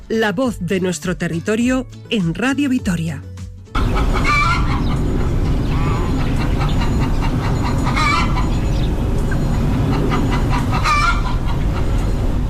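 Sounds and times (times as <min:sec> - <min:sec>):
speech: 0:00.1 - 0:03.3, 0:03.9 - 0:04.3
hens clucking: 0:03.8 - 0:12.4
low rumble of distant industrial machinery: 0:03.8 - 0:12.4.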